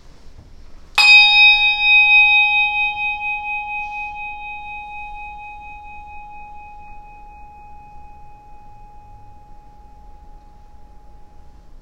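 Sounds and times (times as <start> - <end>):
single bell struck before Sunday morning worship: 1.0 - 11.7.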